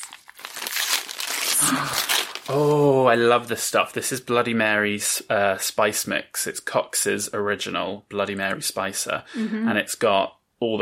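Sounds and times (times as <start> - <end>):
paper crinkling and tearing: 0.0 - 2.8
speech: 1.6 - 10.8.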